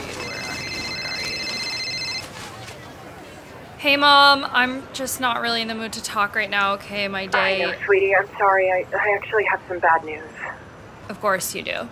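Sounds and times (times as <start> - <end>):
telephone dialing tones: 0.0 - 2.4
busy murmur: 0.0 - 11.8
speech: 3.8 - 10.4, 11.1 - 11.8.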